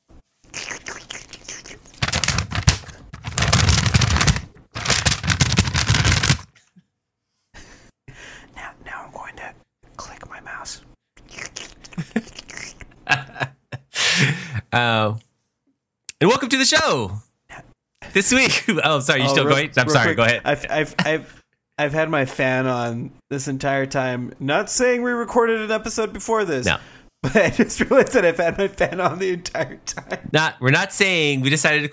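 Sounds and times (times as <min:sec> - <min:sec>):
paper crumpling loudly: 0:02.0 - 0:06.5
speech: 0:14.7 - 0:15.2, 0:16.2 - 0:17.2, 0:18.1 - 0:31.9.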